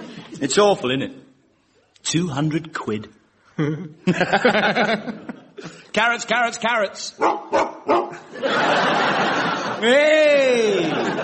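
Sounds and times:
speech: 0:00.4 - 0:01.2, 0:02.0 - 0:11.2
laughter: 0:03.6 - 0:05.8, 0:08.1 - 0:11.2
dog barking: 0:07.2 - 0:08.2.

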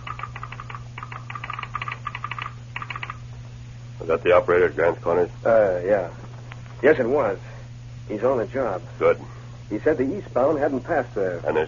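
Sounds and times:
telegraph sounder clicking in a telegraph office: 0:00.0 - 0:03.2
steady low hum: 0:00.0 - 0:11.6
speech: 0:04.0 - 0:06.2, 0:06.8 - 0:07.5, 0:08.1 - 0:11.6.

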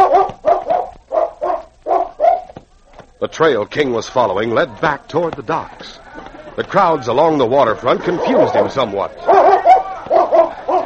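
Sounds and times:
dog barking after sniffing out a scent near a cafe back door: 0:00.0 - 0:02.6, 0:08.1 - 0:10.8
speech: 0:03.2 - 0:06.0, 0:06.6 - 0:09.5
laughter: 0:04.9 - 0:10.8.

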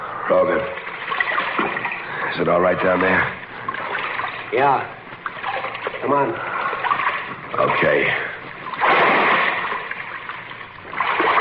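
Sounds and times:
churning, sloshing waist-deep water: 0:00.0 - 0:11.3
speech: 0:00.3 - 0:00.8, 0:02.3 - 0:03.4, 0:04.5 - 0:05.0, 0:06.0 - 0:06.5, 0:07.5 - 0:08.2
heavy splash of a person dropping into dark waist-deep water: 0:08.8 - 0:10.0.

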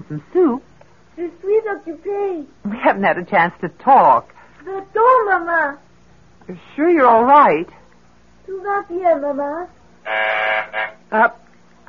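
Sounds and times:
speech: 0:00.0 - 0:05.9, 0:06.5 - 0:07.8, 0:08.5 - 0:11.8
phone buzzer sounding from downstairs in a home: 0:10.0 - 0:11.1.

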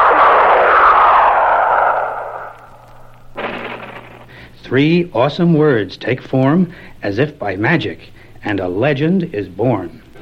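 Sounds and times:
flare shot into the sky over a city: 0:00.0 - 0:04.3
burst of noise: 0:00.0 - 0:04.6
steady low hum: 0:00.0 - 0:05.4
speech: 0:04.7 - 0:10.0.

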